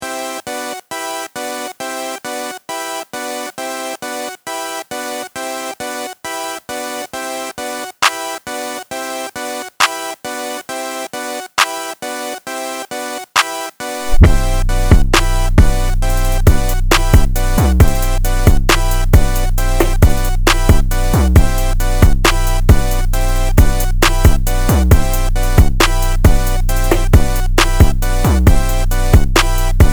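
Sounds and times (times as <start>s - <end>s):
full drum beat: 14.1s - 29.9s.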